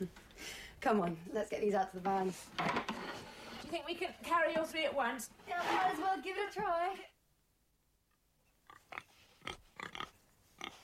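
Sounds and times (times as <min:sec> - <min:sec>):
speech: 0:00.0 - 0:02.9, 0:03.7 - 0:07.1
pig grunting and snorting: 0:08.7 - 0:10.8.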